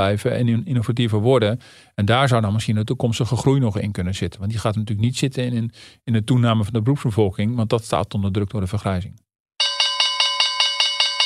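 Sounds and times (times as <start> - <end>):
speech: 0.0 - 9.7
electric bell ringing to signal a closing question round: 9.6 - 11.2.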